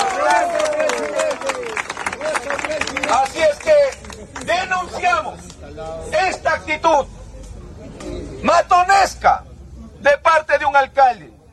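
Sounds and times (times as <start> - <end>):
crowd applauding: 0.0 - 5.6
man speaking loudly: 2.2 - 7.1, 8.4 - 11.4
speech: 5.3 - 7.2.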